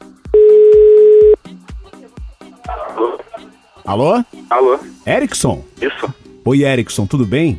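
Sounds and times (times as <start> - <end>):
telephone dial tone while placing a call: 0.4 - 1.4
voice-like noise: 1.8 - 3.8
speech: 3.9 - 7.5.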